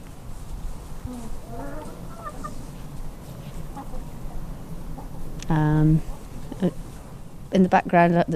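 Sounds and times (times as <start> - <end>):
hens clucking in a farmyard: 1.0 - 7.2
speech: 5.5 - 6.8, 7.5 - 8.3.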